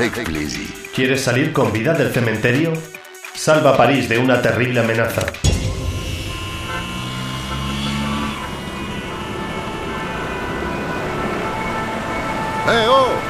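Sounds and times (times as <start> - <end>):
speech: 0.0 - 5.5, 12.7 - 13.2
car horns honking in a traffic jam: 5.4 - 13.2
dense steady rumble of traffic in a traffic jam: 5.5 - 13.2.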